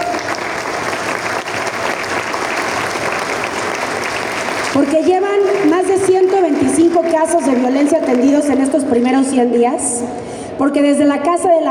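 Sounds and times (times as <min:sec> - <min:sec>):
applause from a sizable crowd: 0:00.0 - 0:09.0
speech: 0:06.0 - 0:11.6.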